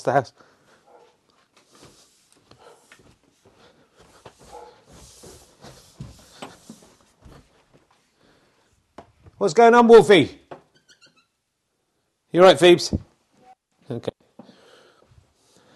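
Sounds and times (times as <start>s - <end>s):
speech: 0.0s - 0.5s, 9.4s - 10.4s, 12.3s - 13.1s, 13.9s - 14.2s
dog barking: 0.8s - 1.2s, 2.6s - 2.9s, 4.5s - 4.9s.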